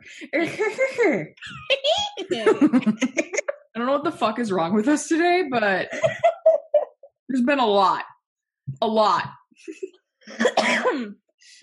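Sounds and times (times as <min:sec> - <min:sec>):
speech: 0:00.1 - 0:06.4, 0:07.3 - 0:08.1, 0:08.7 - 0:11.6
laughter: 0:00.2 - 0:03.6, 0:05.9 - 0:07.1
raspy throaty cough: 0:10.3 - 0:11.2.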